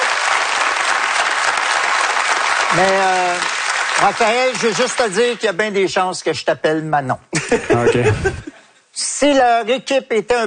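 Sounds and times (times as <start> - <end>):
studio audience applause on a television show: 0.0 - 5.6
speech: 2.7 - 10.4
laughter: 7.4 - 8.7.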